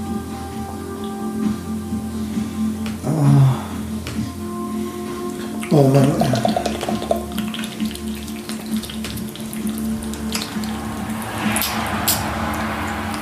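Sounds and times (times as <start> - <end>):
low mechanical hum: 0.0 - 13.1
water gushing from a tap: 5.4 - 13.1
speech: 5.7 - 6.6.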